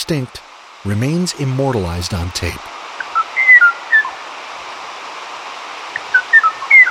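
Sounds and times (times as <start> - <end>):
steady hiss of forest noise on archival tape: 0.0 - 6.9
speech: 0.1 - 2.8
Kauai o'o singing whistled notes in high dense forest of Kauai: 3.0 - 4.2, 6.0 - 6.9.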